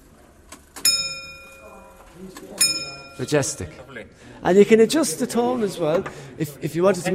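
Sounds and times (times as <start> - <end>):
mechanical clock chiming the hour with a bright bell tone: 0.8 - 1.9, 2.6 - 3.7
speech: 2.2 - 7.1.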